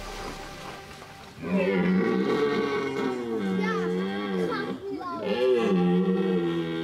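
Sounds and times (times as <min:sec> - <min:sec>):
deer stag roaring during the rut: 0:01.5 - 0:06.8.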